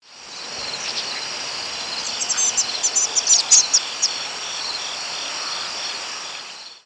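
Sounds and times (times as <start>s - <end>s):
steady hiss: 0.0s - 6.8s
Tree swallow high thin twittering chirps: 0.6s - 6.0s.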